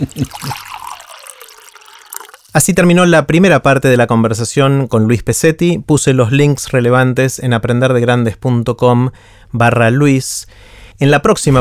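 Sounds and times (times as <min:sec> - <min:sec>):
speech: 0:00.0 - 0:00.6, 0:02.6 - 0:11.5
water poured for drinking in a steady trickle: 0:00.0 - 0:02.6.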